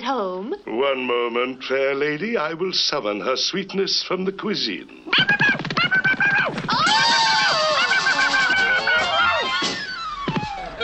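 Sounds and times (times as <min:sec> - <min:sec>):
speech: 0:00.0 - 0:05.5
laughter: 0:05.1 - 0:09.8
woman screaming on catching sight of a man: 0:06.7 - 0:09.7.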